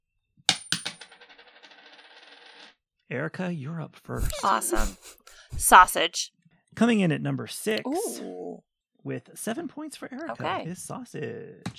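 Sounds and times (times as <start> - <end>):
coin tossed landing and spinning on a hard surface: 0.5 - 2.8
speech: 3.1 - 11.7.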